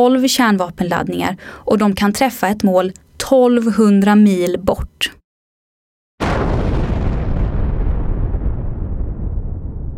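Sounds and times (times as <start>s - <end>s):
speech: 0.0s - 5.2s
depth charge explosion: 6.2s - 9.9s.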